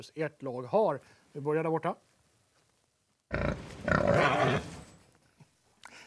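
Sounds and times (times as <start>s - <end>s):
speech: 0.0s - 2.1s, 3.3s - 4.7s
loud rough lion roar as team buzzer sound: 3.3s - 4.9s.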